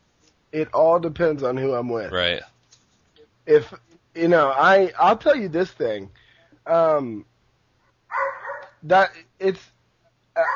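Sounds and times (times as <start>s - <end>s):
speech: 0.5s - 2.5s, 3.4s - 7.3s, 8.8s - 9.7s, 10.4s - 10.5s
female dog barking: 8.1s - 8.8s, 10.4s - 10.5s.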